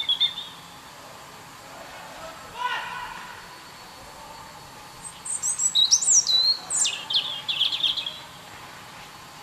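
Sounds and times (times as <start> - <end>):
European robin Erithacus rubecula singing: 0.0 - 0.8, 3.6 - 8.4.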